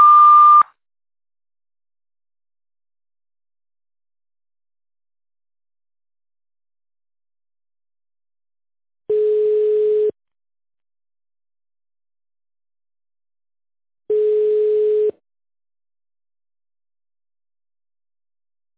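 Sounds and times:
long telephone beep of an automated phone line: 0:00.0 - 0:00.6, 0:09.1 - 0:10.2, 0:14.1 - 0:15.2.

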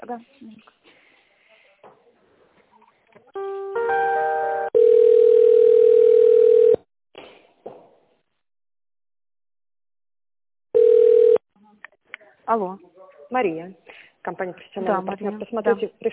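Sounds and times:
speech: 0:00.1 - 0:00.8, 0:12.5 - 0:16.1
telephone line tones while a call is transferred: 0:04.2 - 0:06.8, 0:10.8 - 0:11.4
telephone line beep: 0:04.7 - 0:06.8, 0:10.8 - 0:11.4.

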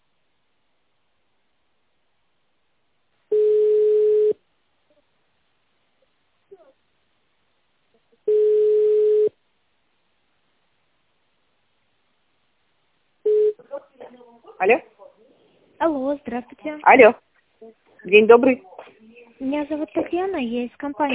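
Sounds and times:
telephone line tones while a call is being connected: 0:03.3 - 0:04.4, 0:08.3 - 0:09.4
speech: 0:14.6 - 0:14.9, 0:15.8 - 0:18.7, 0:19.4 - 0:21.1.

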